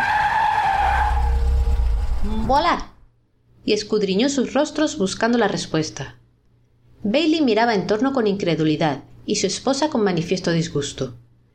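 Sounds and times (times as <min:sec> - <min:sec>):
car tires screeching as car brakes hard: 0:00.0 - 0:02.8
low car engine rumble: 0:01.0 - 0:03.1
speech: 0:02.5 - 0:02.9, 0:03.6 - 0:06.2, 0:07.0 - 0:11.2.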